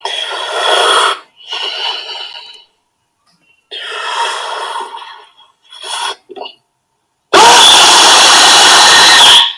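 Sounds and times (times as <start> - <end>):
loud scream: 7.3 - 9.5.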